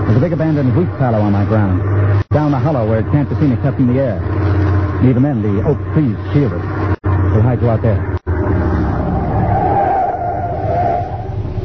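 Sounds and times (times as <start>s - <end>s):
truck engine rumbling while driving up a rough dirt road: 0.0s - 11.6s
speech: 0.1s - 4.4s, 5.0s - 6.7s, 7.4s - 8.1s.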